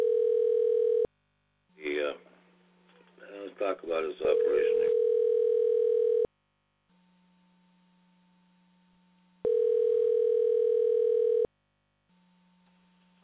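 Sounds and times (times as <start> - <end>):
telephone tone while dialing a call: 0.0 - 1.1, 4.3 - 6.3, 9.4 - 11.5
speech: 3.6 - 5.0.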